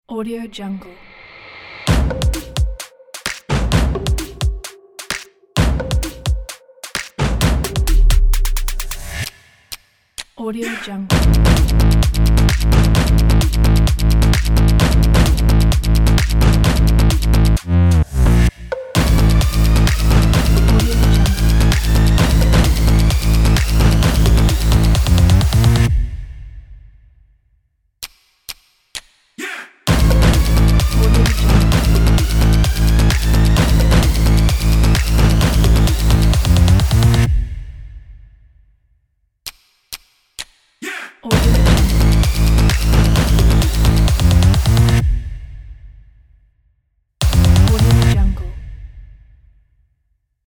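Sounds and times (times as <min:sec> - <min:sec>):
trailer drums: 0:01.8 - 0:09.9, 0:11.1 - 0:17.6, 0:18.7 - 0:26.9, 0:29.9 - 0:38.2, 0:41.3 - 0:46.0, 0:47.2 - 0:49.1.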